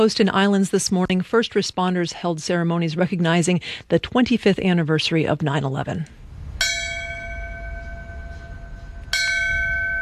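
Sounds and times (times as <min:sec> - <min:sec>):
speech: 0:00.0 - 0:06.2
faint low ambient rumble: 0:04.0 - 0:10.0
large ceremonial fire station bell ringing outdoors: 0:06.6 - 0:10.0.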